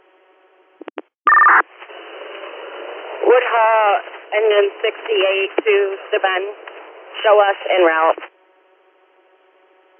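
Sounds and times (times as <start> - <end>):
quick beeps over a fire dispatch radio channel: 1.3 - 1.6
two-pitch fire dispatch paging alert tone: 1.3 - 1.6
hissing crackling open fire dispatch radio channel: 1.5 - 8.3
speech: 3.3 - 8.3.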